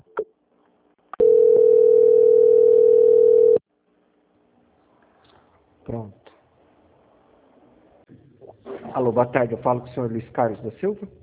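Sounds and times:
telephone line beep during a call transfer: 1.2 - 3.6
speech: 9.0 - 11.2.

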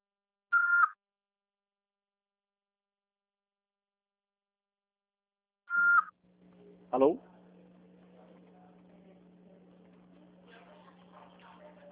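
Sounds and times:
answering machine beeps before recording a message: 0.6 - 1.0, 5.7 - 6.1
speech: 6.9 - 7.3.

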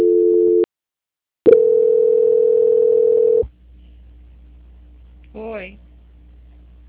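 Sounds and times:
telephone tone while a phone call is being transferred: 0.0 - 0.7, 1.5 - 3.4.

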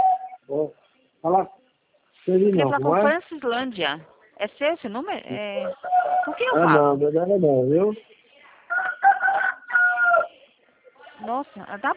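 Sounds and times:
speech: 0.5 - 1.6, 2.3 - 8.2, 11.2 - 11.9
rooster crowing: 5.6 - 6.6, 8.7 - 10.3.

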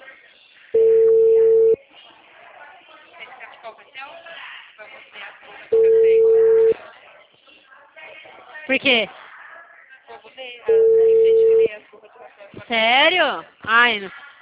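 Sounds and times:
telephone ringing tone while calling a client: 0.8 - 1.8, 5.8 - 6.8, 10.7 - 11.7
speech: 8.7 - 9.2, 12.7 - 14.2.

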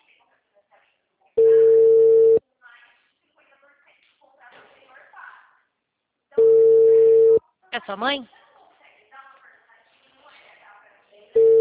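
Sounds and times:
telephone ringback tone on an outgoing call: 1.4 - 2.4, 6.4 - 7.4, 11.4 - 11.5
speech: 7.8 - 8.4.

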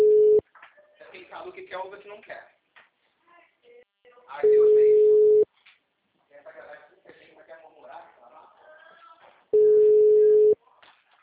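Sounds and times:
loud even telephone beep: 0.0 - 0.4, 4.4 - 5.4, 9.6 - 10.6
steady telephone line tone on a silent call: 0.0 - 0.4, 9.6 - 10.6
speech: 1.8 - 2.6.

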